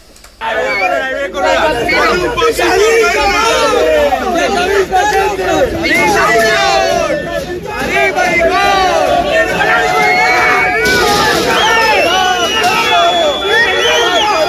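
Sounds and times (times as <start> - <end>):
football fans jeering and shouting at an airport: 0.4 - 14.4
football fans whistling shrilly at an airport: 9.6 - 14.4.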